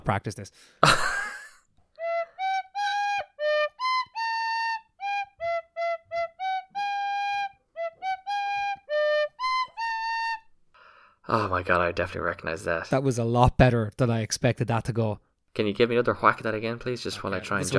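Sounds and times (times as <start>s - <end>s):
speech: 0.0s - 1.1s, 11.3s - 17.7s
laughter: 0.8s - 1.6s
tin whistle playing a lively movie theme tune: 2.0s - 10.5s
tin whistle player breathing between phrases: 10.7s - 11.2s.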